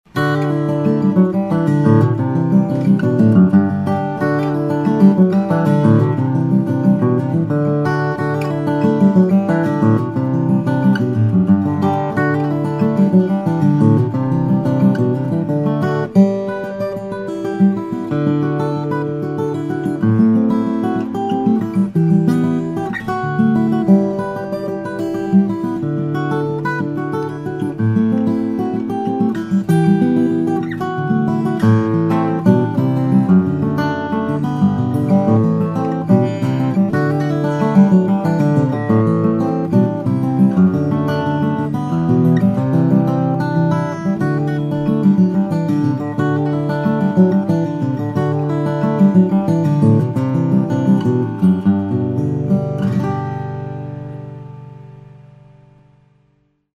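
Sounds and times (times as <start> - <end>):
madrone flattop steel string guitar: 0.0 - 56.4.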